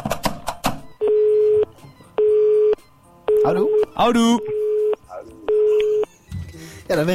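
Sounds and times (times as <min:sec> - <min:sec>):
telephone tones after a call is hung up: 0:00.9 - 0:06.1
speech: 0:03.4 - 0:04.6, 0:06.9 - 0:07.1.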